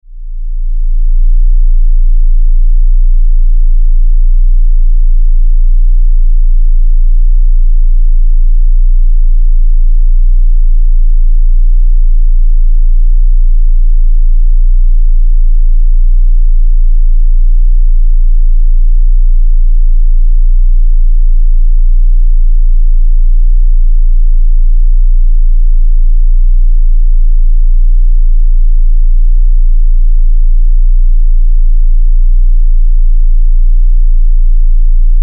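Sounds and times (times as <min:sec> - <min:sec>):
deep bass drone hum: 0:00.0 - 0:35.2.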